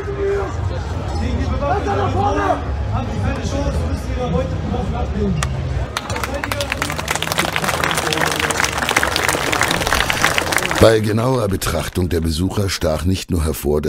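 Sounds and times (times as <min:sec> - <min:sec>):
crowd murmur and voices: 0:00.0 - 0:12.7
speech: 0:01.8 - 0:05.6, 0:10.8 - 0:13.8
large audience applauding loudly: 0:05.9 - 0:12.1.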